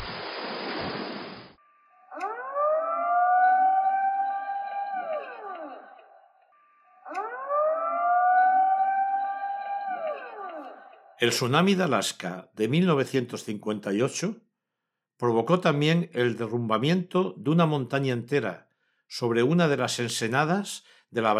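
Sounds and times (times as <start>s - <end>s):
rushing noise: 0.0s - 1.6s
civil defense tsunami warning siren wailing on the island of Stromboli, Italy: 1.6s - 11.2s
speech: 11.2s - 14.4s, 15.2s - 21.3s.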